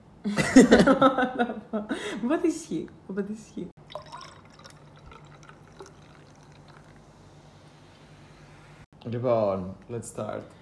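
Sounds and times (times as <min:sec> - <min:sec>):
speech: 0:00.2 - 0:04.0, 0:09.1 - 0:10.6
drink pouring into a glass: 0:03.8 - 0:07.4.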